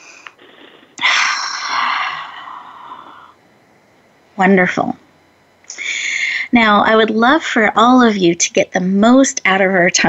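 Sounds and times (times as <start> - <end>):
person taking a big deep breath: 0.0 - 3.4
speech: 4.4 - 5.0, 6.5 - 10.0.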